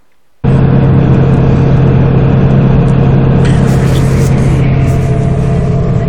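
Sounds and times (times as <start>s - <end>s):
naturally aspirated five-cylinder car engine running: 0.4s - 6.0s.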